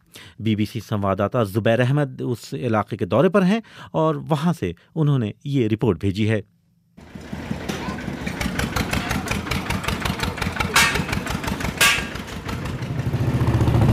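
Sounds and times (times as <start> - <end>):
speech: 0.4 - 7.2
motorcycle engine running while riding: 7.0 - 13.9
sharp rattling bumps: 7.0 - 13.9.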